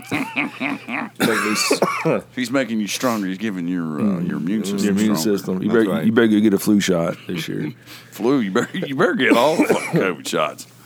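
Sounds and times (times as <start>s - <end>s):
person coughing: 0.0s - 2.2s, 8.6s - 10.2s
laughter: 0.0s - 2.3s, 6.9s - 10.1s
speech: 0.0s - 10.8s.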